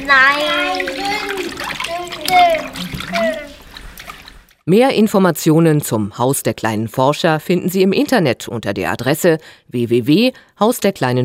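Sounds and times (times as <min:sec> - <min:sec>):
speech: 0:00.0 - 0:00.9, 0:04.7 - 0:11.2
children talking: 0:00.0 - 0:03.6
water sloshing and splashing as children make small waves: 0:00.0 - 0:04.7.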